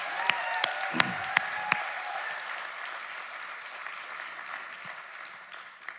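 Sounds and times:
church audience clapping in praise: 0.0 - 5.9
raised voices of church audience: 0.8 - 1.7.

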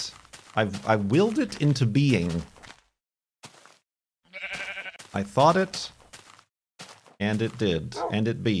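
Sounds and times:
speech: 0.0 - 2.6, 5.2 - 6.0, 7.2 - 8.5
pink sheep bleating: 4.3 - 5.1.

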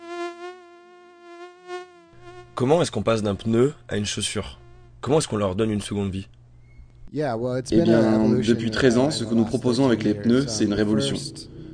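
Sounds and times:
mosquito whine: 0.0 - 3.6, 4.4 - 4.9
speech: 2.6 - 6.4, 7.1 - 11.5.

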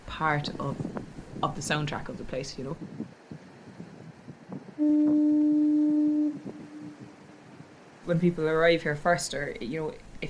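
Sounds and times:
low rumbling: 0.0 - 8.7
faint wind: 0.0 - 10.2
speech: 0.2 - 3.1, 4.8 - 5.4, 8.1 - 10.2
loud deep coastal foghorn blast: 4.8 - 7.8.

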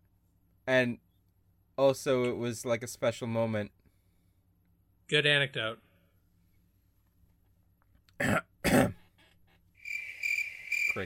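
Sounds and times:
speech: 0.7 - 1.0, 1.8 - 3.8, 5.1 - 5.8
person clearing throat with coughs: 8.2 - 9.1
edited-in high-pitched cricket chirping sound effect: 9.8 - 11.0.

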